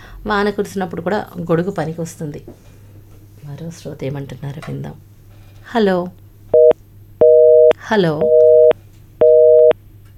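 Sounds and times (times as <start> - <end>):
faint low hum: 0.0 - 10.1
speech: 0.2 - 2.8, 3.6 - 5.1, 5.7 - 6.2, 7.9 - 8.4
telephone busy tone as a phone-in call drops: 6.6 - 9.8.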